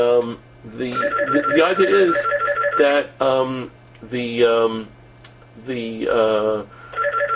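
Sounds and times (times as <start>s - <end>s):
speech: 0.0s - 5.0s, 5.6s - 6.8s
high electronic beeps: 0.9s - 2.8s
telephone ringing: 0.9s - 3.0s, 7.0s - 7.3s.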